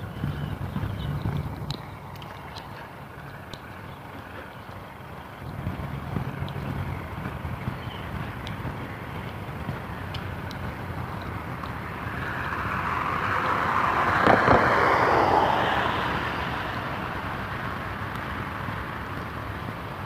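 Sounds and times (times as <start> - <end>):
wind noise: 0.0 - 3.9, 4.8 - 20.0
tractor engine rumbling outdoors: 0.0 - 20.0
faint clicking: 1.2 - 5.2, 6.4 - 6.8, 7.9 - 9.4, 10.0 - 11.8.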